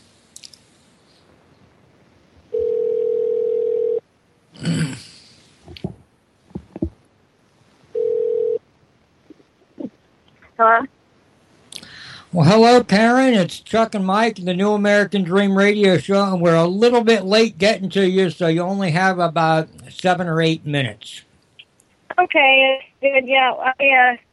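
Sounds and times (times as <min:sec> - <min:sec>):
telephone ringback tone calling a home line: 0:02.5 - 0:04.0, 0:08.0 - 0:08.6
speech: 0:12.4 - 0:21.3, 0:22.2 - 0:24.2.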